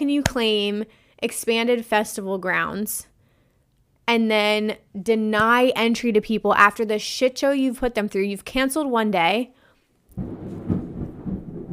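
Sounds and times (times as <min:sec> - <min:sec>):
speech: 0:00.0 - 0:03.1, 0:04.1 - 0:09.6
thunder rumbling during a thunderstorm: 0:10.2 - 0:11.7.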